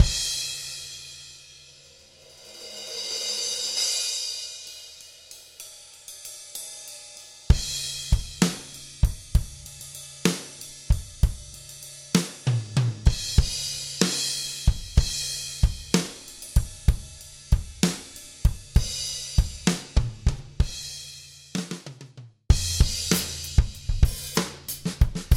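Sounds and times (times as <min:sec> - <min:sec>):
rock ballad drums: 0:00.0 - 0:01.0, 0:07.5 - 0:21.0, 0:22.5 - 0:25.3.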